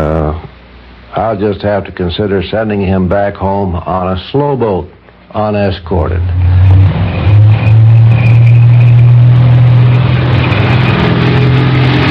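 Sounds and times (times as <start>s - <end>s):
speech: 1.3s - 6.7s
WWII tank engine rumble in the North African desert: 6.2s - 12.0s.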